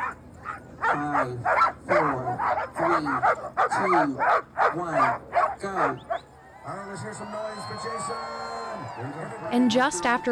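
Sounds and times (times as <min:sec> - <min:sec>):
team of veteran sled dogs barking and yipping: 0:00.0 - 0:06.3
speech: 0:00.9 - 0:10.3.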